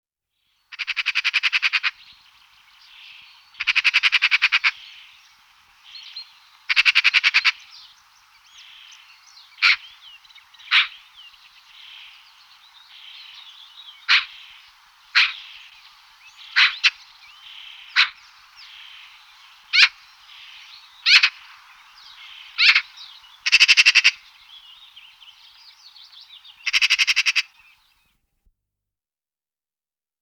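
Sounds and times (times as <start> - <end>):
birds: 0.4 - 28.2
magpie calling: 0.7 - 2.2, 2.9 - 5.2, 6.0 - 7.7, 8.5 - 11.1, 12.9 - 24.3, 26.6 - 27.8.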